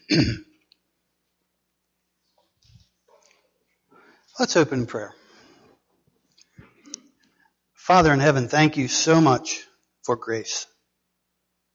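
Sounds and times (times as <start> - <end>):
person clearing throat: 0.0 - 0.6
speech: 0.1 - 0.5, 4.4 - 5.2, 7.9 - 10.7.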